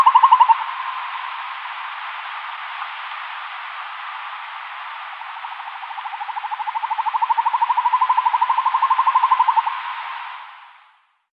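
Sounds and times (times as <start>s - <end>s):
Northern hawk-owl giving a rapid bubbling trill: 0.0s - 1.6s, 5.2s - 10.5s.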